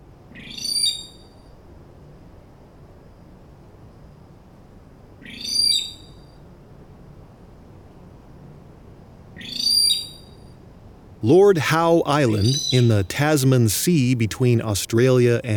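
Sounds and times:
speech: 0:11.2 - 0:15.5
Lord Howe rail calling harsh piercing high notes: 0:11.3 - 0:13.6.

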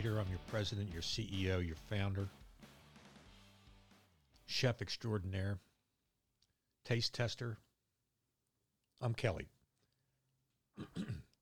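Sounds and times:
speech: 0:00.0 - 0:02.4, 0:04.5 - 0:05.7, 0:06.8 - 0:07.6, 0:09.0 - 0:09.6, 0:10.8 - 0:11.3
person clearing throat: 0:10.8 - 0:11.4.

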